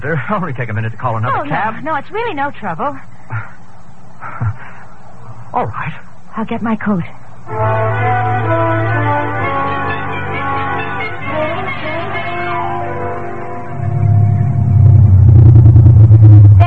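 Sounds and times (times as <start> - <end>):
speech: 0.0 - 3.6, 5.5 - 8.5
car engine humming as the vehicle pulls away from the curb: 7.5 - 16.6.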